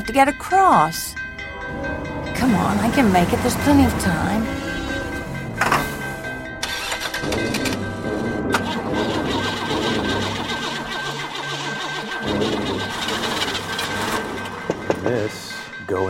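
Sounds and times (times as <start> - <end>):
speech: 0.0 - 4.7, 15.1 - 16.0
car engine cranking, trying to start: 1.7 - 15.7
car starter grinding and sputtering: 6.6 - 15.3.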